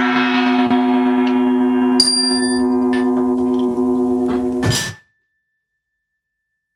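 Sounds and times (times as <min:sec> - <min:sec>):
resonant gong ringing: 0:00.0 - 0:04.6
sharp metallic hit: 0:00.0 - 0:05.0.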